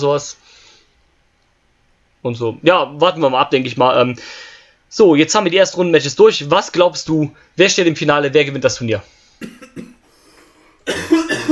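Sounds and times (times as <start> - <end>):
speech: 0.0 - 0.6, 2.2 - 10.0, 10.9 - 11.5
person coughing: 9.4 - 11.5.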